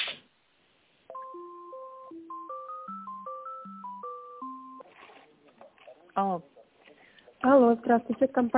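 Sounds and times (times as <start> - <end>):
telephone line beeping melody during call transfer: 1.1 - 4.8
speech: 6.2 - 6.5, 7.4 - 8.5.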